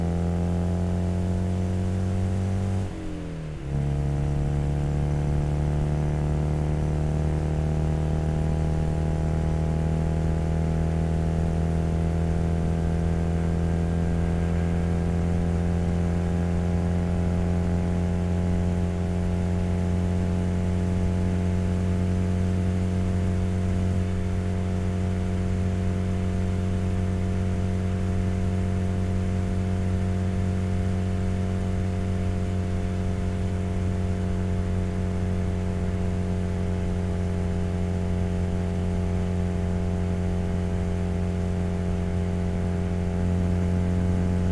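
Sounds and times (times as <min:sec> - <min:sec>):
Citroen 2CV racing car exhaust with modified engine on highway drive: 0:00.1 - 0:44.5.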